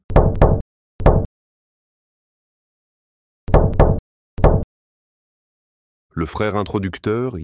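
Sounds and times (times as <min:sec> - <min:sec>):
ritual knocks on a door: 0:00.1 - 0:01.3, 0:03.5 - 0:04.6
speech: 0:06.2 - 0:07.4.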